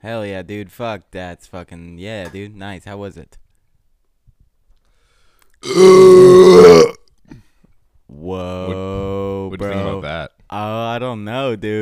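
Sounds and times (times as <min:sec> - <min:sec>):
speech: 0:00.0 - 0:03.4, 0:05.6 - 0:06.8, 0:09.6 - 0:11.8
loud rumbling burp after chugging beer: 0:05.6 - 0:07.1.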